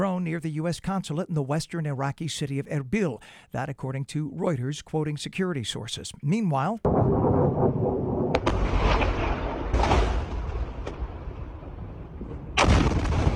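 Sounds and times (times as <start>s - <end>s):
speech: 0.1s - 7.6s
Iranian missile crashing and exploding at an air base in Jordan: 6.8s - 13.3s
constant low rumble: 6.9s - 13.3s.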